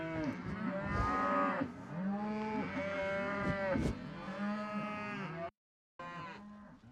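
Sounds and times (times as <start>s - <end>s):
cows breathing on the microphone: 0.0s - 4.4s
cattle lowing in moos: 0.0s - 5.4s.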